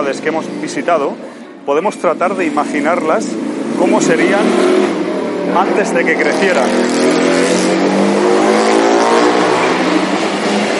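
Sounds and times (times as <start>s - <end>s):
speech: 0.0s - 8.1s
very loud motorcycle engine revving: 2.2s - 10.7s.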